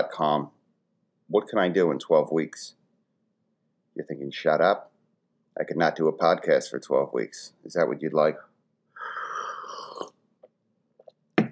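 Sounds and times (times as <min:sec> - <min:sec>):
speech: 0:00.0 - 0:00.6, 0:01.3 - 0:02.8, 0:04.0 - 0:04.9, 0:05.6 - 0:08.5
person slurping tea: 0:09.0 - 0:10.2.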